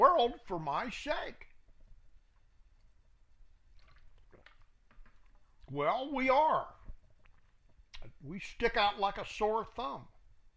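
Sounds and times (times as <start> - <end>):
speech: 0.1 - 1.5, 5.7 - 6.8, 8.0 - 10.1
gentle water trickling and dripping: 2.8 - 5.7
water poured into a cup: 3.7 - 5.5.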